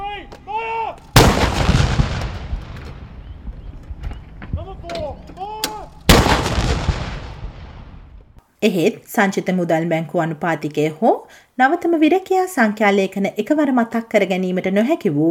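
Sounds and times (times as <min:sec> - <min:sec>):
artillery blasts from a ceremonial gun salute: 0:01.1 - 0:03.7, 0:06.0 - 0:08.4
speech: 0:08.6 - 0:15.3.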